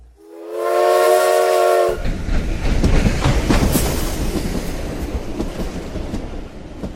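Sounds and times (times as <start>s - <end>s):
train whistle blown by the engine driver: 0.2s - 2.0s
train rumbling and clattering as it leaves a station: 0.9s - 6.9s.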